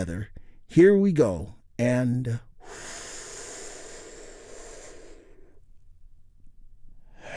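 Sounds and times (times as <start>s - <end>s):
speech: 0.0s - 2.9s
person breathing in deeply during a guided relaxation exercise: 2.6s - 5.7s, 7.1s - 7.3s.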